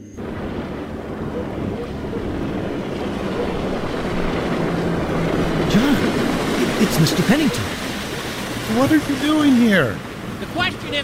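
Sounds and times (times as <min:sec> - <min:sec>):
boat engine drone on the water: 0:00.0 - 0:11.0
steady wind: 0:00.0 - 0:11.0
water lapping: 0:00.2 - 0:11.0
speech: 0:06.8 - 0:07.8, 0:08.7 - 0:11.0.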